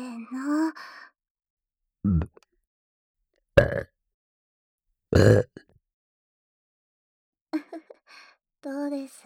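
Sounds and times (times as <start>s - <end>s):
speech: 2.0s - 2.4s
loud burps: 2.1s - 2.4s, 3.6s - 3.9s, 5.2s - 5.6s
short softer throaty sounds: 2.1s - 2.4s.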